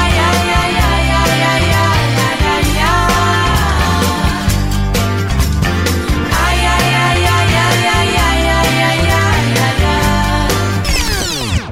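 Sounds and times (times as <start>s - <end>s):
female singer repeating ai ai ai in a song chorus: 0.0s - 4.6s, 6.3s - 10.8s
full band playing with a steady beat: 0.0s - 10.9s.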